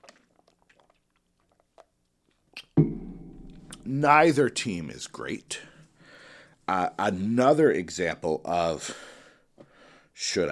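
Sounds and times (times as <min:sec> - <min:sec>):
person sipping water with wet mouth sounds: 0:00.0 - 0:02.7
speech: 0:03.9 - 0:05.7, 0:06.7 - 0:09.1, 0:10.2 - 0:10.4.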